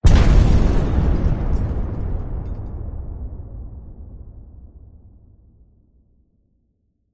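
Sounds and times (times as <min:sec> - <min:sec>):
explosion of flame and glass: 0:00.0 - 0:05.5.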